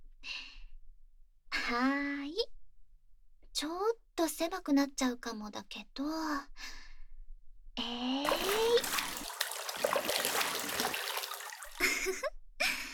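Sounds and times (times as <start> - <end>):
speech: 1.7 - 2.5, 3.6 - 6.8, 7.8 - 8.4
child's voice: 3.6 - 6.5
bath water splashing over the rim of an overfilled bathtub: 8.3 - 12.0.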